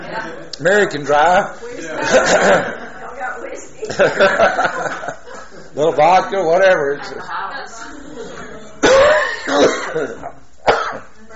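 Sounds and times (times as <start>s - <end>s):
speech: 0.1s - 2.8s, 3.6s - 5.1s, 5.8s - 7.7s, 9.0s - 10.3s
laughter: 1.6s - 5.8s
person coughing: 8.8s - 11.1s.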